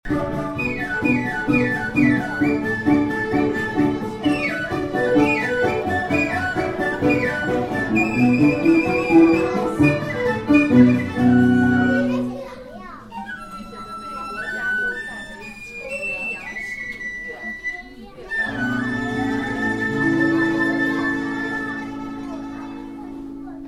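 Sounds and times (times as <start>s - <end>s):
traditional music: 0.1s - 12.5s, 18.2s - 23.6s.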